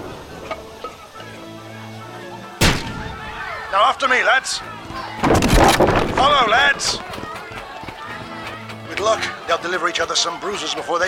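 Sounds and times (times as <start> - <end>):
concussion grenade exploding in a mortar hole: 2.6 - 3.4
speech: 3.7 - 4.8, 6.2 - 7.1, 9.0 - 11.0.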